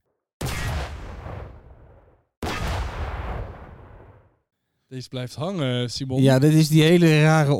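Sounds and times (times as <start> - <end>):
cannon firing a cannonball: 0.4 - 4.3
speech: 4.9 - 7.5.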